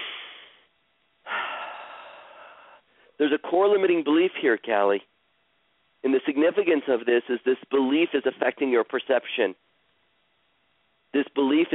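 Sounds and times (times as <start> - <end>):
slow deep breath during a guided healing breathing exercise: 0.0 - 3.2
speech: 3.2 - 5.1, 6.0 - 9.6, 11.1 - 11.7.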